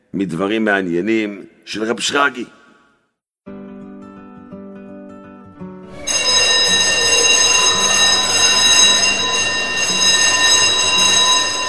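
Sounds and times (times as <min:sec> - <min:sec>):
speech: 0:00.1 - 0:02.6
electric school bell ringing for recess: 0:05.9 - 0:11.6.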